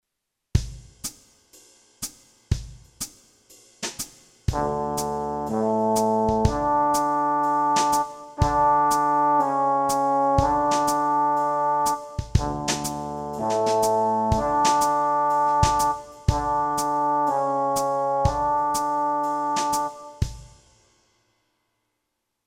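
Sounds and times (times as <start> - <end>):
brass notes in F: 4.5 - 20.6.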